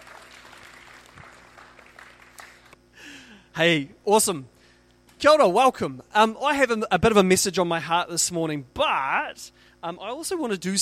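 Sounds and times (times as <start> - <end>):
room full of people applauding: 0.0 - 2.8
speech: 3.6 - 4.6, 5.2 - 10.7.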